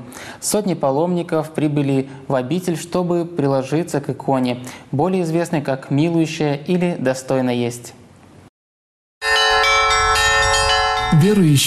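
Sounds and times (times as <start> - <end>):
speech: 0.4 - 8.0, 11.1 - 11.6
monastery church bells ringing for a religious procession near Căpriana: 9.2 - 11.6.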